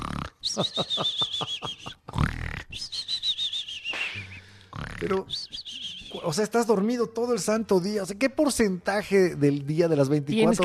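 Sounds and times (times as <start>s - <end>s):
voice imitating cartoonish snoring: 0.0s - 0.5s, 2.1s - 2.9s, 4.2s - 5.3s
laughter: 0.5s - 2.2s
speech: 0.5s - 3.0s, 5.0s - 10.6s.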